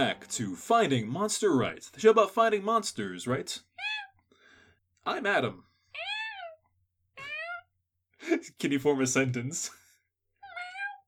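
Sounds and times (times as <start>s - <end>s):
speech: 0.0s - 3.7s, 5.0s - 6.1s, 8.3s - 9.8s
person imitating cat meows: 3.7s - 4.1s, 6.0s - 6.6s, 7.2s - 7.7s, 10.4s - 11.0s.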